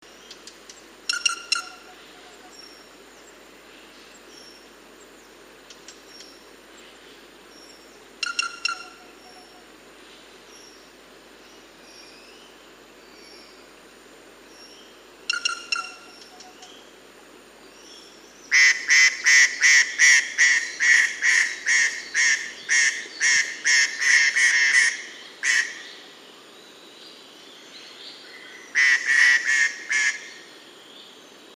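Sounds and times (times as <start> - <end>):
White-bellied treepie Dendrocitta leucogastra calling: 1.1 - 2.6, 8.2 - 9.8, 15.3 - 16.7, 18.5 - 25.8, 28.7 - 30.4.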